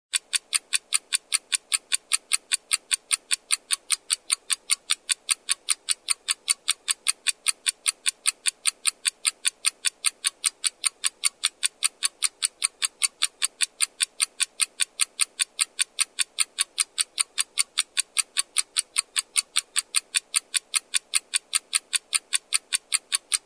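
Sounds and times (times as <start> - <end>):
stopwatch ticking: 0.1 - 23.4.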